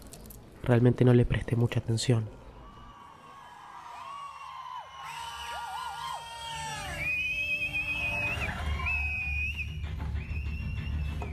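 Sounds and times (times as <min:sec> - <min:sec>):
speech: 0:00.6 - 0:02.4
cinema audience cheering: 0:02.5 - 0:11.3
cinema audience shouting: 0:02.6 - 0:09.4
whistles and whoops from cinema audience: 0:02.6 - 0:11.3
cinema audience clapping: 0:03.3 - 0:11.3.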